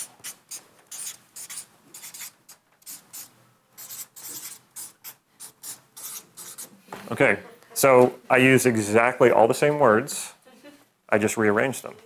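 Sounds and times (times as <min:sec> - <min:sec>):
writing on a board: 0:00.0 - 0:06.8
speech: 0:07.1 - 0:10.2, 0:11.1 - 0:12.0.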